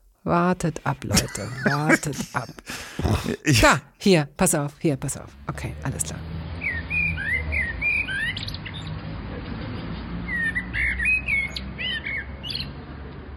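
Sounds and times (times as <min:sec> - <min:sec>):
speech: 0:00.2 - 0:06.3
laughter: 0:01.1 - 0:03.7
medium-sized black birds singing with squeaky whistles and chattering squawks: 0:06.6 - 0:09.0, 0:10.2 - 0:12.7.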